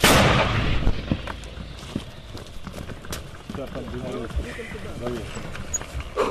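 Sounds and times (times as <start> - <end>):
82 mm mortar rounds being fired: 0.0 - 1.0
voices talking outdoors: 1.3 - 6.2.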